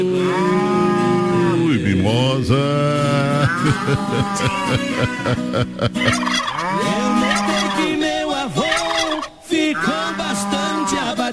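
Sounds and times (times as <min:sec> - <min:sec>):
ox mooing loudly: 0:00.1 - 0:02.2, 0:03.0 - 0:04.8, 0:06.0 - 0:11.2
laughter: 0:01.6 - 0:08.9
speech: 0:03.6 - 0:07.0.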